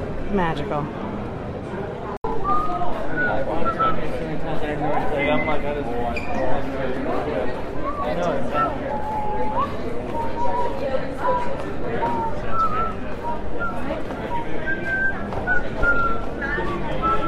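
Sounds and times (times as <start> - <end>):
street crowd chatter of locals and families: 0.0 - 17.2
speech: 0.3 - 1.1, 2.4 - 12.4
person whistling short bright melodic notes: 2.3 - 4.1, 7.8 - 10.9, 12.0 - 17.2
footsteps: 2.4 - 17.2.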